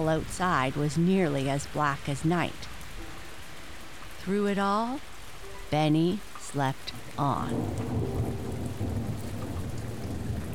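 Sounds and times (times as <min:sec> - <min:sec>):
speech: 0:00.0 - 0:02.8, 0:04.2 - 0:05.1, 0:05.7 - 0:08.0
heavy rain: 0:00.0 - 0:10.5
deep low thunder rumbling: 0:06.5 - 0:10.5.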